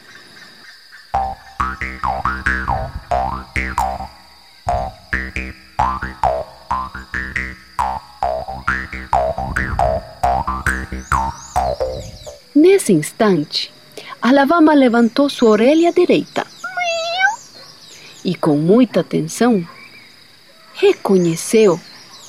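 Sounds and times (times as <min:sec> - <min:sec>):
bubbling gurgling blips over a telephone line: 0:01.2 - 0:12.4
speech: 0:01.8 - 0:02.6, 0:12.8 - 0:16.4, 0:18.3 - 0:19.8, 0:20.8 - 0:21.9.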